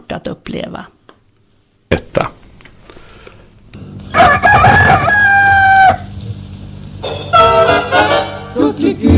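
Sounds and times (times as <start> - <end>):
low hum: 0.0 - 9.1
speech: 0.1 - 1.0
rooster crowing: 4.1 - 6.1.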